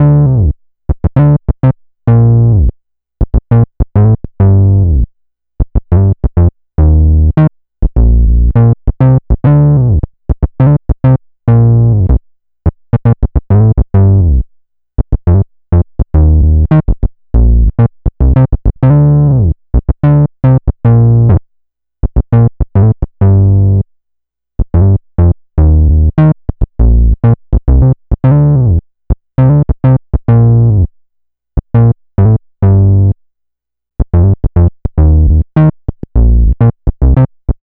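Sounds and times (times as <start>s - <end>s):
synth bass loop in B flat: 0.0s - 2.7s, 3.5s - 5.1s, 5.8s - 10.0s, 10.6s - 12.2s, 13.0s - 14.4s, 15.0s - 21.4s, 22.2s - 23.8s, 24.7s - 28.8s, 29.4s - 30.9s, 31.7s - 33.2s, 34.0s - 37.3s.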